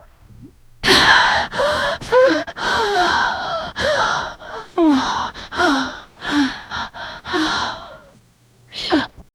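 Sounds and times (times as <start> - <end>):
aggressive demonic woman's voice: 0.8 - 8.0.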